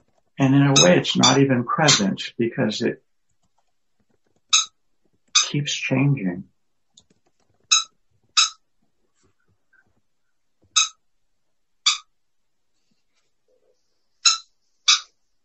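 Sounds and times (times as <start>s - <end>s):
speech: 0.4s - 3.0s, 5.5s - 6.5s
pet bird calling with high chirps: 0.7s - 2.1s, 4.5s - 4.8s, 5.4s - 5.6s, 7.7s - 8.6s, 10.7s - 11.0s, 11.9s - 12.1s, 14.2s - 15.2s.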